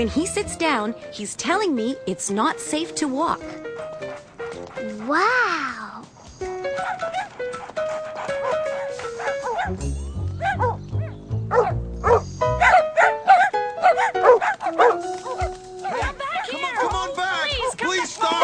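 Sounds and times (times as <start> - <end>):
speech: 0.0 - 3.7, 5.1 - 5.7
bright tuneful music: 0.0 - 18.4
dog barking: 6.8 - 9.8, 10.4 - 17.0.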